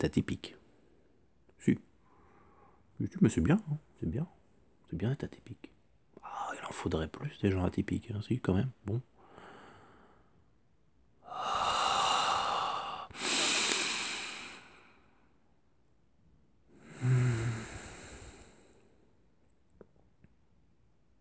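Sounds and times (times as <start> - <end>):
speech: 0.0 - 0.6, 1.6 - 1.9, 3.0 - 5.7, 6.3 - 9.1
heavy breathing while lying face down: 11.2 - 15.1, 16.8 - 18.8.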